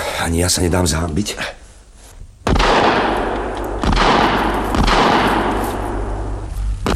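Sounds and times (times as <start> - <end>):
speech: 0.2 - 1.6
rifle shot during a chamois hunt: 2.4 - 6.9
sustained rumbling wash after a rifle shot: 2.5 - 6.9.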